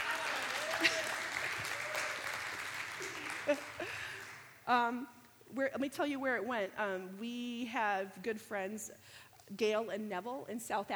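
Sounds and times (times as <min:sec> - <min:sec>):
crowd applauding: 0:00.0 - 0:04.5
speech: 0:04.7 - 0:10.9.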